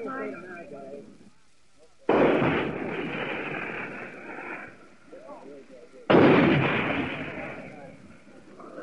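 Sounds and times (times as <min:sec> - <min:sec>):
faint speech: 0:00.0 - 0:03.0, 0:04.6 - 0:08.8
75 mm tank gun firing shells at a hill during an assault: 0:02.1 - 0:04.8, 0:06.1 - 0:08.1, 0:08.7 - 0:08.8.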